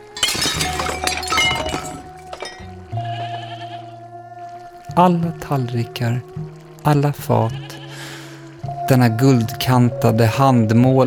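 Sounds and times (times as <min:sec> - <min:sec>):
gold-rimmed hand-painted porcelain plates and platters crashing and shattering on a floor: 0:00.0 - 0:02.8
sustained wavering bleat-like tone: 0:03.0 - 0:04.2, 0:07.3 - 0:08.0
speech: 0:05.0 - 0:07.7, 0:08.9 - 0:11.0.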